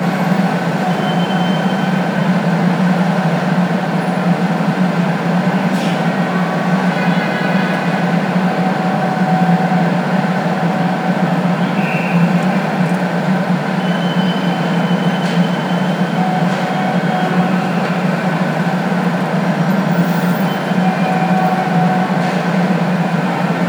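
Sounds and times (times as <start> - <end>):
heavy city ambience: 0.0 - 23.6.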